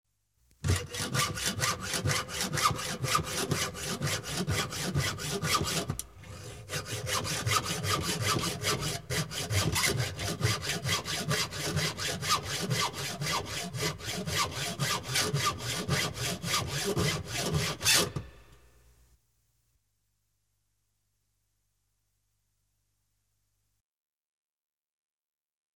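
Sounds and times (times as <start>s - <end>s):
carpenter's handsaw sawing: 0.6s - 18.3s.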